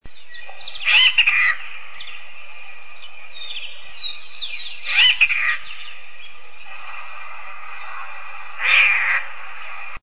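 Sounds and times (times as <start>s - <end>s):
magpie calling: 0.8s - 1.8s, 4.8s - 5.9s, 8.0s - 9.4s.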